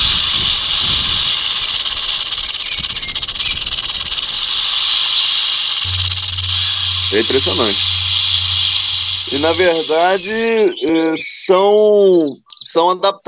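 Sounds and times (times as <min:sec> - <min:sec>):
rattlesnake hissing through its mouth: 0:00.0 - 0:10.6
low hum: 0:04.0 - 0:10.8
speech: 0:07.1 - 0:07.9, 0:09.3 - 0:13.2.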